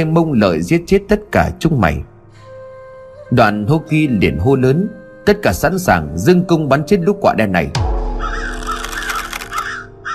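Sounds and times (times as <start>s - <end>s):
speech: 0.0s - 2.1s, 3.3s - 8.5s
flock of crows cawing while flying: 8.1s - 10.1s.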